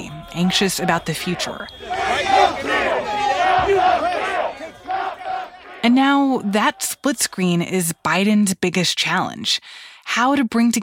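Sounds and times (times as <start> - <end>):
large crowd cheering and shouting outdoors in street celebration: 0.0 - 7.1
speech: 0.3 - 2.8, 5.8 - 10.8.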